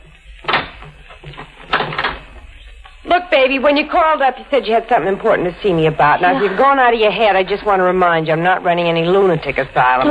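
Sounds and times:
door pushed shut and locked: 1.6s - 2.2s
speech: 3.4s - 10.0s.

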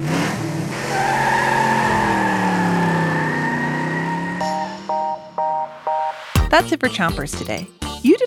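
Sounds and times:
self-driving car gliding past with a whine: 0.0s - 6.0s
speech: 6.5s - 8.2s.

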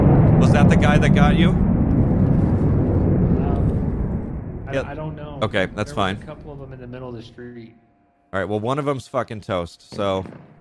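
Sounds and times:
airplane flying overhead with a low rumbling roar: 0.0s - 7.4s
speech: 0.4s - 2.1s, 4.7s - 10.5s.

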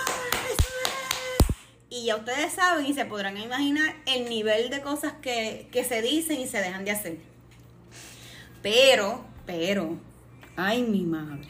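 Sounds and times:
fast loud hand clapping: 0.0s - 1.7s
speech: 2.0s - 7.3s, 8.6s - 11.4s.

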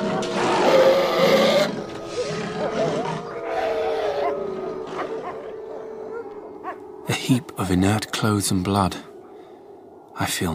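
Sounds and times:
wolves snarling and growling in a courtyard: 0.0s - 7.0s
speech: 7.3s - 9.1s, 10.2s - 10.5s.

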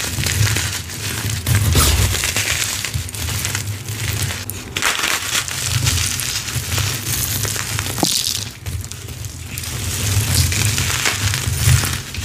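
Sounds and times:
dyed gym chalk bombs crushed, crunching and crumbling: 0.0s - 12.2s
sharp crack of crushed chalk bomb: 1.6s - 2.7s.

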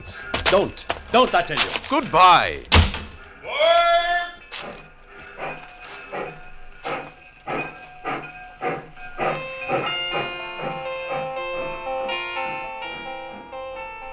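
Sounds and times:
speech: 0.0s - 2.8s
steam train pulling away: 4.6s - 13.4s.

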